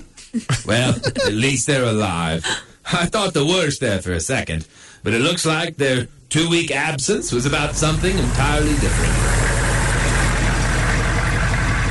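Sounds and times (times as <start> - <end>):
laughter: 0.3 - 1.6
speech: 0.4 - 9.6
school bus engine idling with a broad hiss: 7.2 - 11.8.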